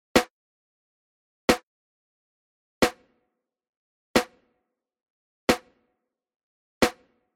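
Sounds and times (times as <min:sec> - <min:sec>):
drums in a room: 0:00.2 - 0:00.4, 0:02.8 - 0:03.3, 0:04.2 - 0:04.6, 0:05.5 - 0:05.9, 0:06.8 - 0:07.3.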